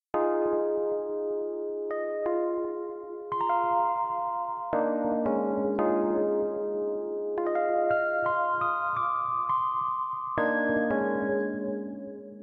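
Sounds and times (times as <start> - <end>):
groovy Rhodes electric piano: 0.2 - 12.4.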